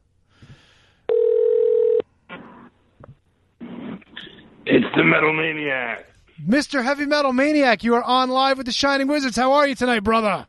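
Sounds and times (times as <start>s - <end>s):
telephone ring tone of a call placed to Hawaii: 1.1s - 2.0s
short bursts of telephone line noise: 2.3s - 5.3s
speech: 4.7s - 10.4s.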